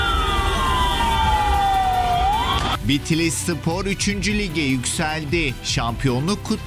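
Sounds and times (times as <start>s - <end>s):
ambulance siren wailing through traffic jammed by football promotion celebrations: 0.0s - 2.8s
speech: 2.9s - 6.6s.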